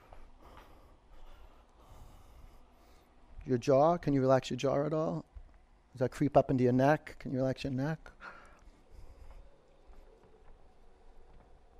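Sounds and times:
slow deep breath in and out: 0.0s - 3.4s, 8.2s - 10.2s
speech: 3.4s - 5.3s, 6.0s - 8.2s.

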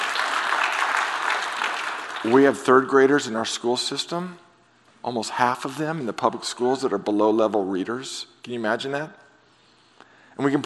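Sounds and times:
audience clapping: 0.0s - 2.9s
speech: 2.2s - 4.4s, 5.0s - 9.2s, 10.4s - 10.6s.

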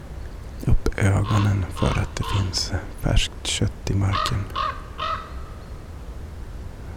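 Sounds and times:
low steady outdoor rumble: 0.0s - 6.9s
raven giving hoarse croaking calls: 0.6s - 5.6s
speech: 1.0s - 4.7s.

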